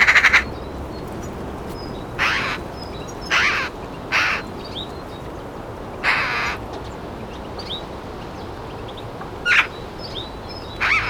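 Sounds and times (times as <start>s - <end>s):
Eurasian magpie Pica pica rasping calls: 0.0s - 4.9s, 6.0s - 6.6s, 10.8s - 11.0s
small birds chirping faintly: 0.0s - 11.0s.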